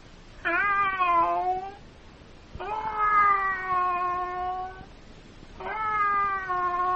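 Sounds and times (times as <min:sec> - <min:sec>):
cat meowing in long wavering cries: 0:00.4 - 0:01.8, 0:02.6 - 0:04.9, 0:05.6 - 0:06.9.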